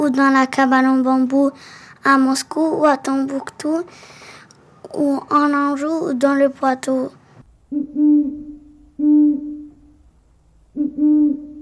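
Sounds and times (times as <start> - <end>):
speech: 0.0 - 4.3, 4.9 - 8.3
owl hooting: 7.7 - 10.0, 10.7 - 11.6.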